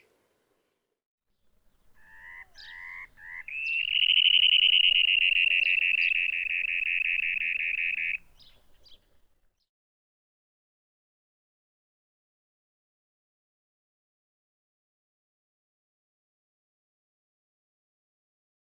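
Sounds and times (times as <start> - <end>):
dunlin calling: 1.7 - 9.3.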